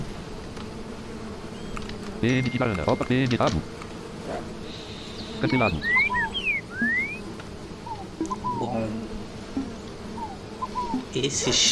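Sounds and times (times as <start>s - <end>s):
dense insect buzzing: 0.0s - 11.6s
speech: 2.2s - 4.6s, 5.4s - 6.0s, 11.1s - 11.6s.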